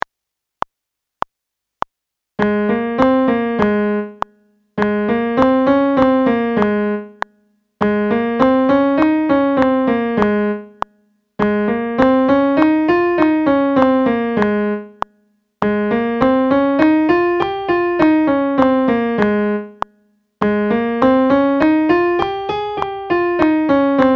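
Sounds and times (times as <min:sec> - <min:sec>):
piano G sharp scale exercise: 0:02.4 - 0:04.2, 0:04.8 - 0:07.2, 0:07.8 - 0:10.8, 0:11.4 - 0:15.0, 0:15.6 - 0:19.8, 0:20.4 - 0:24.1.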